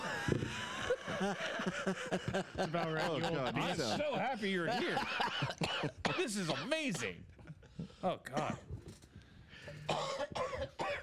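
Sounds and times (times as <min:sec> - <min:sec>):
laughter: 0:00.0 - 0:07.1
speech: 0:01.2 - 0:07.3, 0:08.0 - 0:08.7
harsh forceful raspy coughs: 0:05.1 - 0:07.0, 0:08.3 - 0:08.8, 0:09.7 - 0:11.0.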